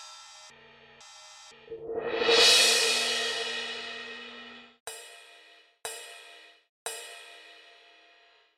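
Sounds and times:
orchestral cymbal crash: 1.8s - 4.7s.

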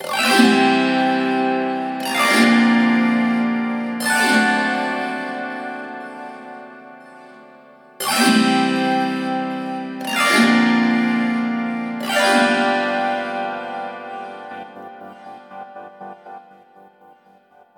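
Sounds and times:
strummed strings: 0.0s - 17.0s.

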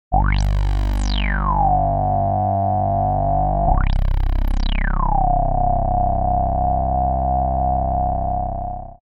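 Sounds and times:
Moog synthesizer bass: 0.1s - 9.0s.

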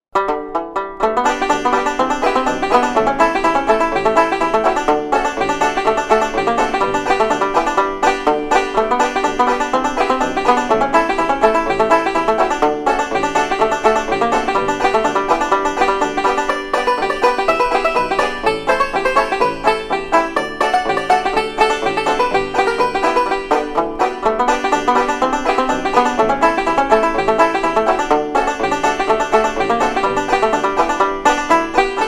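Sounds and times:
plectrum banjo: 0.0s - 32.0s.

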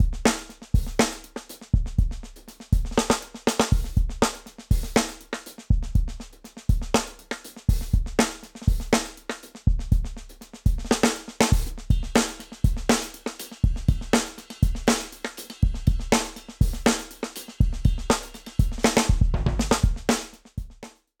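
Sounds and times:
1970s funky drums: 0.0s - 21.1s.

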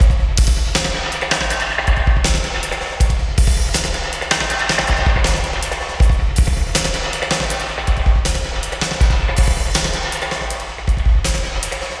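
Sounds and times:
acoustic drums with hybrid reverb and delay: 0.0s - 11.9s.

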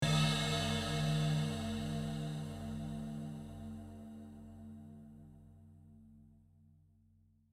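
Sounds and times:
long processed cymbal swirl: 0.0s - 5.3s.

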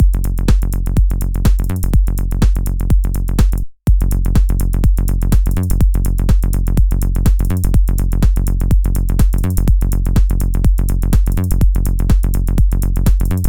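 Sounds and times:
subtle widened synth bass: 0.0s - 13.4s.

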